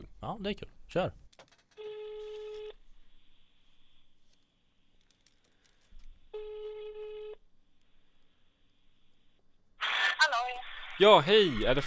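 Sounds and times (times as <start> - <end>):
speech: 0.2 - 1.2, 11.0 - 11.8
ringback tone on an outgoing phone call: 1.8 - 2.8, 6.3 - 7.4.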